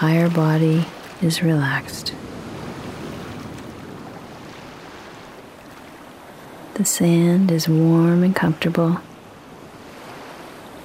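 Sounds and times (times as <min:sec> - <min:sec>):
speech: 0:00.0 - 0:02.2, 0:06.8 - 0:09.1
ocean waves washing on shore: 0:00.0 - 0:10.8.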